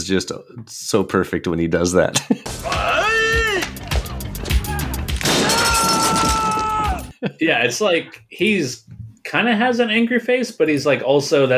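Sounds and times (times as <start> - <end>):
speech: 0.0 - 3.8, 7.2 - 11.5
sharp yell in a movie scene: 2.6 - 7.1
bright ringing clatter of shattering debris: 4.4 - 7.1
submachine gun being shattered in a movie scene: 5.1 - 6.6.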